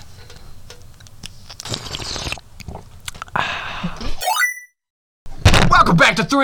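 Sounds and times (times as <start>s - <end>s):
wet slurping and smacking mouth noises from slurping tea: 1.5s - 3.2s
speech: 5.9s - 6.4s.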